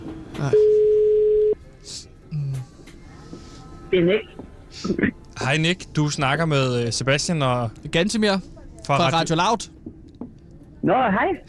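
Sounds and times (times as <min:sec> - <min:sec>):
speech: 0:00.4 - 0:00.8, 0:04.0 - 0:09.8, 0:10.8 - 0:11.4
telephone line tone: 0:00.5 - 0:01.6.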